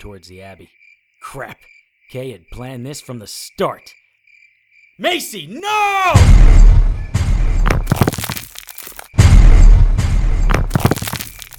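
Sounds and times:
speech: 0.0s - 4.0s, 5.0s - 6.6s
loud booming explosion blasts: 6.1s - 8.4s, 9.2s - 11.2s
sharp crackling and rumbling debris: 7.5s - 11.5s.

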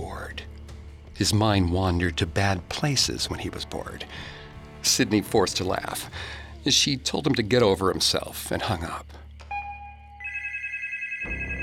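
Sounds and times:
speech: 1.2s - 9.2s
telephone ringing with electronic tone: 9.5s - 11.6s.

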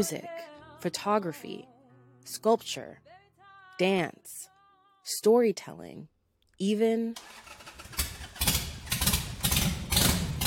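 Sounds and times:
speech: 0.0s - 3.1s, 3.8s - 7.7s
motorcycle engine revving in sharp throaty bursts: 7.2s - 10.4s.

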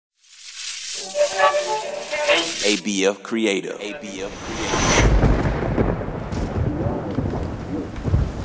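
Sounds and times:
speech: 1.1s - 5.2s
deep rumble of thunder: 4.3s - 8.4s
steady heavy rain: 5.1s - 8.4s.

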